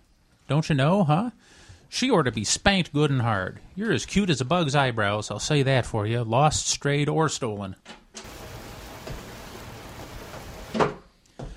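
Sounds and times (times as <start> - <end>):
speech: 0.5 - 8.0
heavy rain: 8.2 - 10.9.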